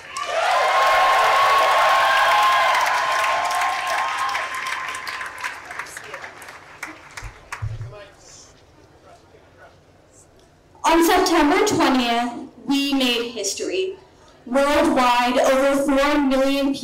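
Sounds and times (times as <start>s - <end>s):
whoops: 0.0s - 5.3s
audience applause and cheering: 0.0s - 7.8s
speech: 11.3s - 12.4s, 13.4s - 16.8s.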